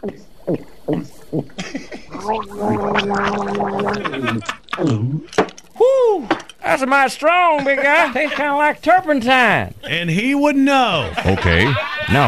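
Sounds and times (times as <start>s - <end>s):
person noisily gulping down a drink: 0.0s - 5.8s
laughter: 1.5s - 5.1s, 7.4s - 9.1s, 9.7s - 12.2s
speech: 2.6s - 5.4s, 6.8s - 12.2s.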